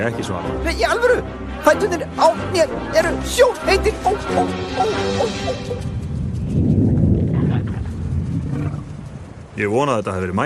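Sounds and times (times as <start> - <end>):
speech: 0.0 - 6.0, 9.6 - 10.4
deep thunder-like rumbling from underground: 5.1 - 10.4.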